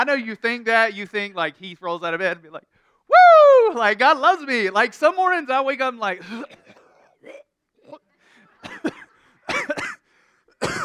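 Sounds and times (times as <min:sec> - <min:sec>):
speech: 0:00.0 - 0:06.6
harsh hacking coughs: 0:06.2 - 0:10.8.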